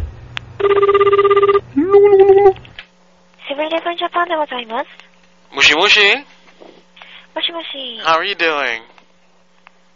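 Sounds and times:
telephone ringing on a call dialed to Japan: 0.6 - 1.7
warbling tonal sounds on the telephone line: 0.6 - 2.6
speech: 4.1 - 6.3, 7.5 - 8.9.

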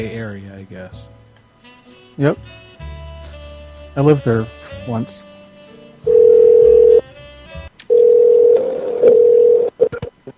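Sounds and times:
speech: 0.0 - 1.2, 2.2 - 2.6, 4.0 - 5.3
phone call ringback tones: 6.1 - 7.1, 7.9 - 9.8.

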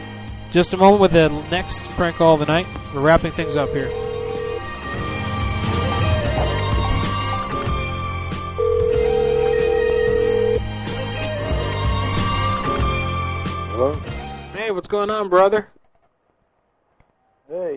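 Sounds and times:
music: 0.0 - 15.6
speech: 0.5 - 4.2, 13.8 - 14.1, 14.7 - 15.8, 17.5 - 17.7
phone ring tone of an outgoing call: 3.1 - 5.1, 8.4 - 10.8.

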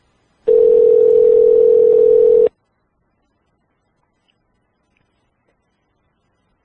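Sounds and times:
steady low electronic ringback tone on an outgoing call: 0.5 - 2.5.

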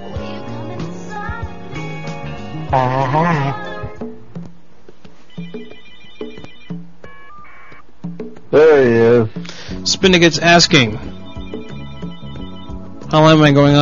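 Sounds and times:
speech: 2.7 - 3.7, 8.5 - 11.2, 13.1 - 13.8
telephone ringing tone on an outgoing call: 5.3 - 7.8, 11.0 - 13.2.

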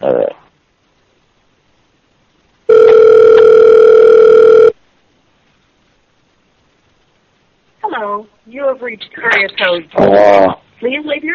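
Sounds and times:
phone call ringing tone beep: 2.7 - 4.8
speech: 8.9 - 11.3.

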